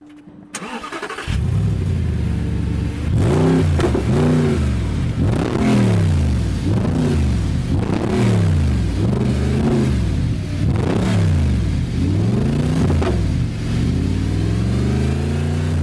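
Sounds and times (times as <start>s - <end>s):
sports car engine starting up and revving at a sports car dealership: 0.6s - 15.8s.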